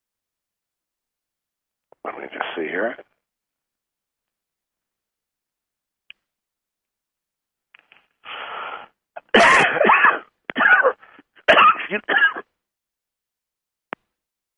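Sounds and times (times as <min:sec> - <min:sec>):
speech: 0:02.0 - 0:03.1, 0:11.9 - 0:12.2
person clearing throat: 0:09.2 - 0:12.5
person with harsh coughs: 0:09.2 - 0:12.5.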